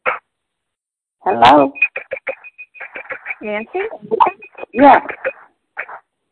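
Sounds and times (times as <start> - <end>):
speech: 1.3 - 1.9, 3.4 - 5.4
caller's voice through a narrow tinny phone line: 1.3 - 2.3, 2.9 - 5.3.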